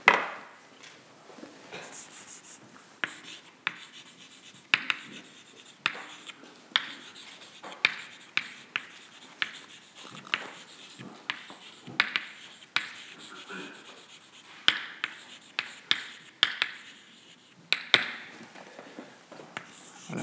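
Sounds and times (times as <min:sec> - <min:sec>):
handwriting scratching on a surface: 0:01.8 - 0:17.9, 0:19.6 - 0:20.2.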